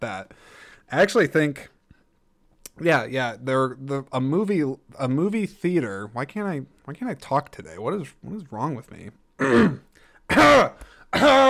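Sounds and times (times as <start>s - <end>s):
speech: 0.0s - 1.7s, 2.8s - 11.4s
person clearing throat: 9.4s - 11.4s.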